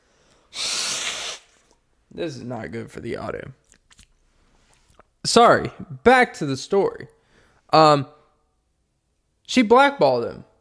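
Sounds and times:
person sneezing: 0.5s - 1.7s
speech: 2.1s - 3.6s, 5.2s - 8.2s, 9.5s - 10.5s.

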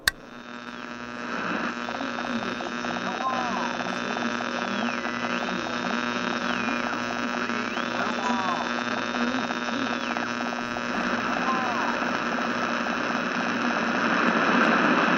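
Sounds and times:
hissing radio static: 0.0s - 15.1s
steady electrical buzz of a radio transmission: 0.0s - 15.1s.

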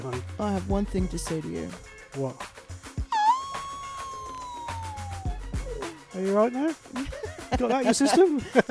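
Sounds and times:
speech: 0.1s - 2.6s, 6.2s - 8.6s
person imitating a wolf howl: 3.1s - 6.0s
laughter: 7.0s - 8.6s.

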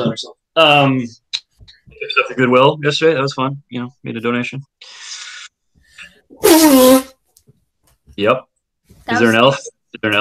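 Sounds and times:
speech: 0.0s - 1.2s, 2.0s - 5.1s, 6.4s - 7.1s, 8.2s - 8.5s, 9.1s - 10.1s
person sneezing: 6.4s - 7.1s.

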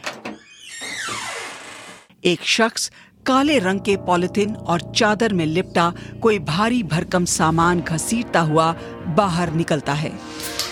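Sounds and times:
long descending door hinge creak: 0.0s - 2.1s
speech: 2.2s - 10.6s.

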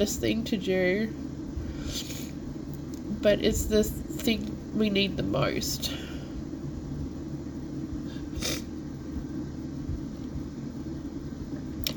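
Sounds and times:
speech: 0.0s - 2.2s, 3.2s - 6.1s
low rumble: 0.0s - 11.9s
person sniffling: 8.1s - 8.7s.

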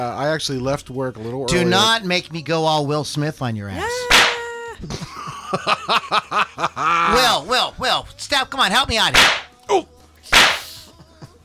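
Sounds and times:
speech: 0.0s - 4.2s, 4.8s - 9.9s
face slap sound effect: 4.1s - 4.5s, 9.1s - 9.5s, 10.3s - 10.8s
laughter: 4.3s - 7.4s, 10.8s - 11.4s.

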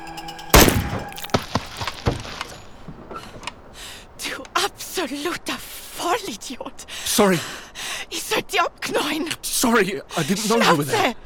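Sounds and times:
headbutt thudding against car window glass: 0.6s - 4.4s
speech: 5.0s - 7.6s, 8.3s - 11.2s.

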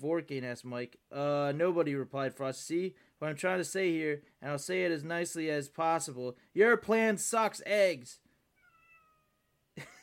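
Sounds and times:
speech: 0.0s - 8.2s
cat meowing: 8.5s - 9.7s.

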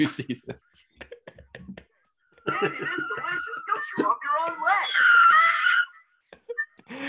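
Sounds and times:
speech: 0.0s - 0.9s
laughter: 0.0s - 1.8s, 2.4s - 4.9s
cartoon bear screaming caught in a bear trap: 4.6s - 6.0s.

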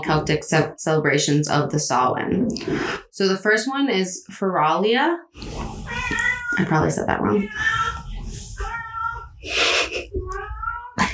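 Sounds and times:
speech: 0.0s - 7.9s, 9.4s - 10.4s
cat meowing: 5.4s - 11.0s.

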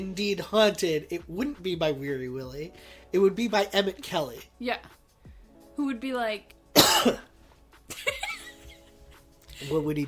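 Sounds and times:
speech: 0.0s - 5.0s, 5.8s - 7.3s, 9.6s - 10.0s
person giving theatrical coughs imitating a ghost: 6.8s - 7.3s.

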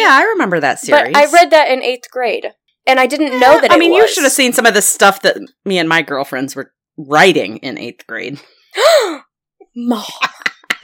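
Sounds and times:
speech: 0.1s - 10.4s
voiced gasp of mock shock: 8.7s - 9.3s.

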